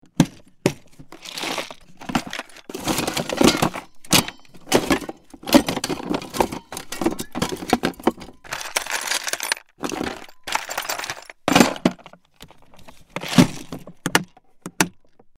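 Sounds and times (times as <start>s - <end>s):
toolbox with tools: 0.0s - 15.3s.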